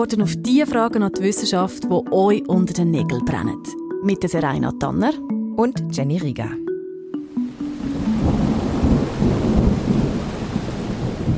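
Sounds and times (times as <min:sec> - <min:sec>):
speech: 0:00.0 - 0:06.7
heavy rain in a thunderstorm: 0:07.4 - 0:11.3
deep rolling thunder: 0:07.9 - 0:11.3.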